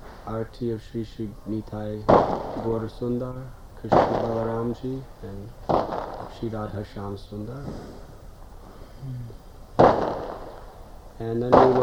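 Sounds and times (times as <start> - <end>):
faint hum: 0.0 - 11.8
speech: 0.3 - 5.7, 6.3 - 8.1, 9.0 - 9.9, 11.2 - 11.8
firework bang: 1.8 - 5.0, 5.6 - 6.8, 9.8 - 11.8.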